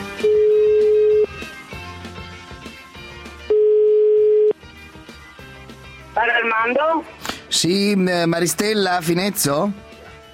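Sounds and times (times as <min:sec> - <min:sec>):
telephone ringing tone on a call to a bar: 0:00.2 - 0:01.3, 0:03.5 - 0:04.6
speech: 0:06.6 - 0:09.9.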